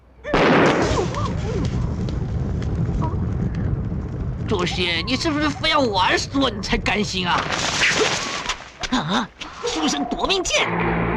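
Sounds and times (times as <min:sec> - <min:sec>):
thrown thunder-pellet bombs exploding with rumbling crackling roar: 0:00.3 - 0:08.7
speech: 0:04.5 - 0:08.2, 0:08.9 - 0:11.0.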